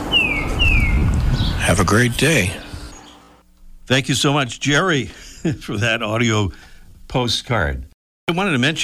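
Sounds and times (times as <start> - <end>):
Tufted titmouse whistling downslurred notes in a backyard in Malden, Massachusetts: 0.1 - 1.6, 2.7 - 3.4
speech: 1.9 - 2.7, 3.9 - 8.8.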